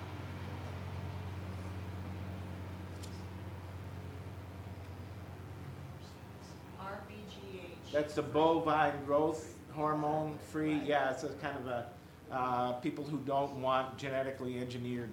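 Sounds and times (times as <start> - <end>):
bus engine drone: 0.0 - 10.2
road noise: 0.0 - 12.4
speech: 7.3 - 15.1.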